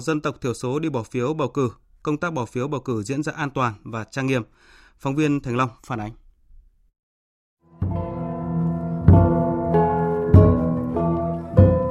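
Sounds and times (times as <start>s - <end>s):
speech: 0.0s - 6.2s
gong ensemble playing: 7.7s - 11.8s.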